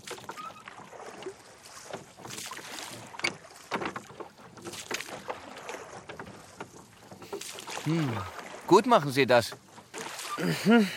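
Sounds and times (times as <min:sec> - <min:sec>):
oars rowing a rowboat on a lake: 0:00.0 - 0:10.9
speech: 0:07.9 - 0:09.6, 0:10.4 - 0:10.9.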